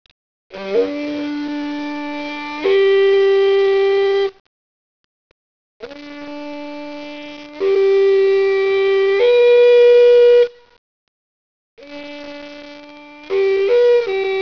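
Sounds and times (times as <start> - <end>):
midwinter horn blowing: 0.5 - 4.4, 5.8 - 10.6, 11.8 - 14.4.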